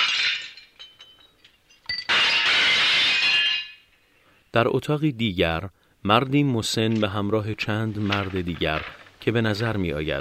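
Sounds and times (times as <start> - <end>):
glass dishes smashed with a chain mace: 0.0 - 3.9
speech: 4.6 - 10.2.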